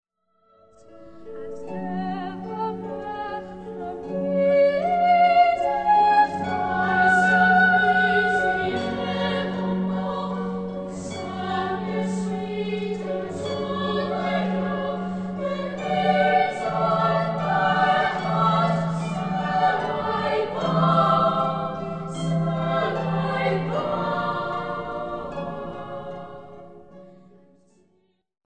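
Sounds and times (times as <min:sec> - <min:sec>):
boys choir singing: 0:04.0 - 0:26.8.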